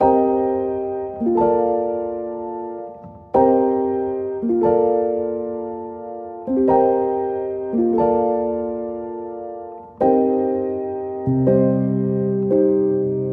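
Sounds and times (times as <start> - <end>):
lo-fi piano chords in C minor: 0.0 - 13.3.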